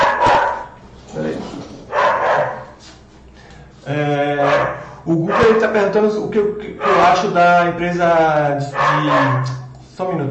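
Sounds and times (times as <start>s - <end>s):
dog barking: 0.0s - 0.8s, 1.9s - 2.8s, 4.4s - 5.6s, 6.8s - 7.2s, 8.7s - 9.6s
speech: 3.9s - 4.3s, 5.0s - 10.2s.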